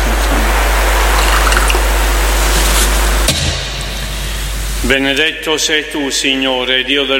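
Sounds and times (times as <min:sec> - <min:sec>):
low hum: 0:00.0 - 0:05.2
water poured into wine during a Mass: 0:00.8 - 0:02.0
speech: 0:04.9 - 0:07.1.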